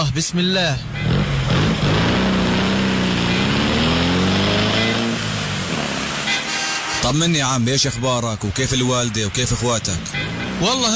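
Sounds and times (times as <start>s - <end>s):
speech: 0.2s - 2.0s, 7.0s - 10.9s
tuk-tuk auto rickshaw small engine revving as it sets off: 1.1s - 6.2s.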